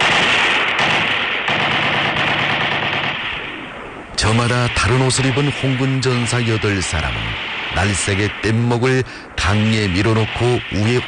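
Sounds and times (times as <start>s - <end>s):
heavy machine gun firing on an enemy firing position in battle: 0.0s - 3.4s
speech: 4.3s - 11.0s.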